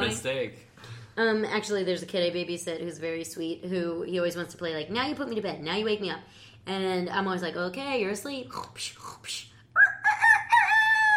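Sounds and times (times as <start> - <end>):
speech: 0.2 - 9.9
person imitating a rooster crowing as a wake-up call: 9.8 - 11.1.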